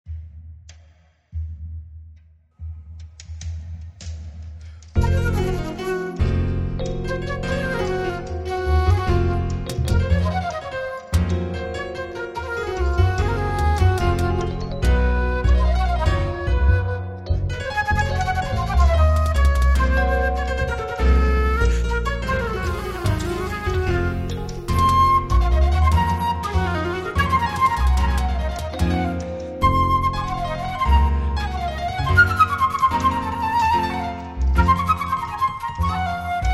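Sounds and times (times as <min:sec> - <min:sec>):
flamenco flute playing a solea: 0:05.0 - 0:36.5.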